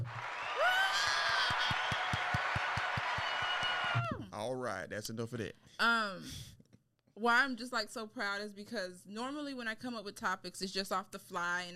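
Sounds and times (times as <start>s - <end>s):
crowd applause: 0.0s - 4.0s
sharp whistles: 3.2s - 4.0s
speech: 4.4s - 6.6s, 7.2s - 11.7s.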